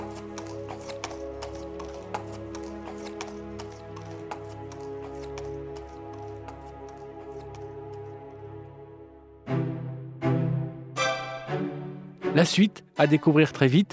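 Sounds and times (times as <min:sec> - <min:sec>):
horse hooves clip-clopping pulling a carriage: 0:00.0 - 0:08.4
sustained tonal backdrop: 0:04.9 - 0:13.5
speech: 0:12.4 - 0:13.9.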